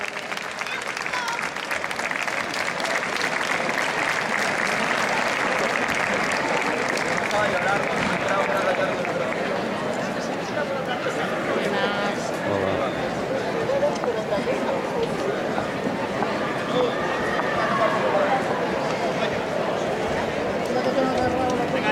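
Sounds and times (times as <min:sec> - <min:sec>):
audience in Leganés applauding for the mayor and officials: 0:00.0 - 0:10.0
faint crowd chatter: 0:00.0 - 0:21.9.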